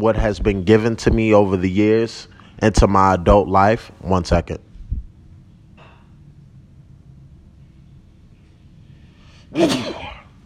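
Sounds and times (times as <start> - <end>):
speech: 0.0 - 4.7, 9.5 - 9.9
low rumbling noise: 0.0 - 10.4
forceful sneeze: 9.5 - 10.3.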